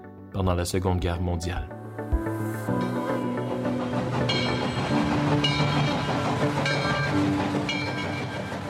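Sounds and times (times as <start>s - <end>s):
speech: 0.4s - 3.0s
train rolling along rails with continuous rumble: 2.3s - 8.6s
rhythmic clacking of train on rails: 2.9s - 8.6s.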